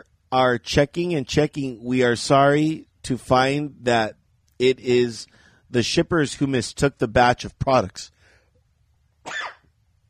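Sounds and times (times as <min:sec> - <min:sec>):
speech: 0:00.3 - 0:08.2
short harsh cough: 0:09.2 - 0:09.7.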